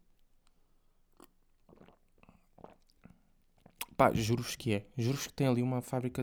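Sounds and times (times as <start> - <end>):
person sipping water: 0.5 - 5.4
soft gulping and wet mouth sounds: 1.1 - 4.4
speech: 4.0 - 6.2.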